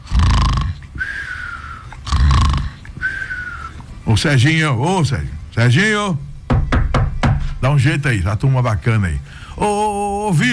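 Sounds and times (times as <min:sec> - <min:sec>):
man snoring: 0:00.0 - 0:01.1, 0:02.1 - 0:02.8
thin whistling breath: 0:01.0 - 0:02.0, 0:03.0 - 0:03.8
speech: 0:04.1 - 0:06.3, 0:07.6 - 0:10.5.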